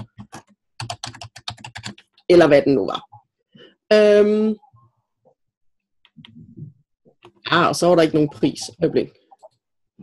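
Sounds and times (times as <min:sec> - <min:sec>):
typing on a computer keyboard: 0:00.0 - 0:02.2
speech: 0:02.3 - 0:03.1, 0:03.9 - 0:04.6, 0:07.5 - 0:09.2.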